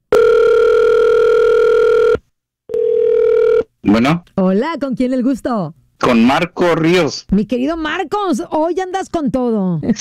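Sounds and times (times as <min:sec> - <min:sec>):
loud steady electronic telephone tone on a call: 0:00.1 - 0:03.7
speech: 0:03.8 - 0:10.0.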